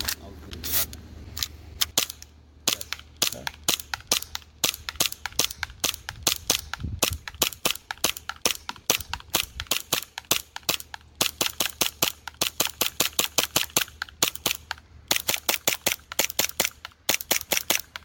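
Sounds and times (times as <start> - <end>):
rapid gunshot bursts from a full-auto capable gun: 1.9 - 17.9.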